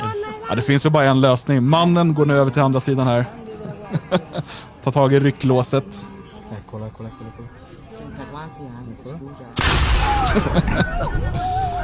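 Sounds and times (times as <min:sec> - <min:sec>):
faint voices and crowd noise: 0:00.0 - 0:11.8
speech: 0:00.5 - 0:11.8
laughter: 0:03.4 - 0:04.8, 0:10.1 - 0:11.8
cannon firing with a loud booming blast: 0:09.6 - 0:11.3.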